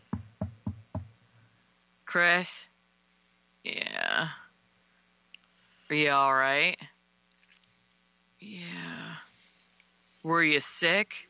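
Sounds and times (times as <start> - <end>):
knocking on a wooden door: 0.0 - 1.2
speech: 2.1 - 2.7, 3.6 - 4.4, 5.9 - 6.9, 10.2 - 11.2.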